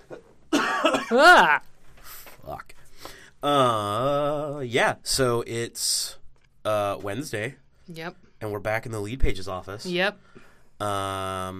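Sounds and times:
person coughing with a rough throaty tone: 0.6s - 1.5s
speech: 0.8s - 1.7s, 3.4s - 11.5s.

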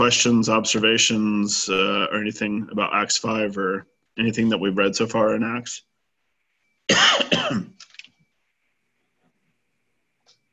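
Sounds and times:
speech: 0.0s - 5.9s, 6.9s - 7.7s
person coughing: 6.9s - 7.8s
throat clearing: 6.9s - 7.8s.

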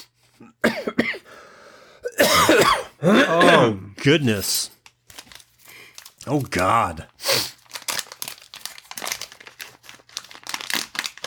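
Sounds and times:
speech: 0.0s - 0.9s, 3.0s - 4.8s, 6.3s - 7.4s
person clearing mucus from the throat and coughing: 0.4s - 1.3s, 2.0s - 4.1s.

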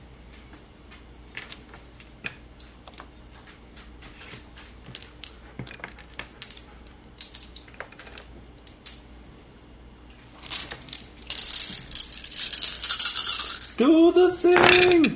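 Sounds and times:
dice tumbling and bouncing on a hard surface: 4.8s - 9.0s, 10.4s - 15.1s.

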